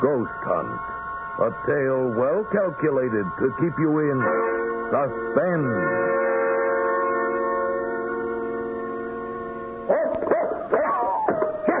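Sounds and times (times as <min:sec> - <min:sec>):
speech: 0:00.0 - 0:06.3
steady sustained humming tone: 0:00.0 - 0:11.7
dog barking: 0:09.9 - 0:11.7.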